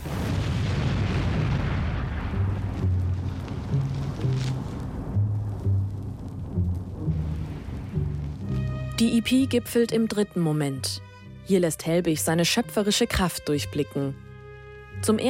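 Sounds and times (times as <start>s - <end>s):
loud dense electronic rumbling like explosions: 0.0s - 8.6s
low droning synth notes: 2.4s - 9.0s
speech: 9.0s - 14.2s, 15.0s - 15.2s.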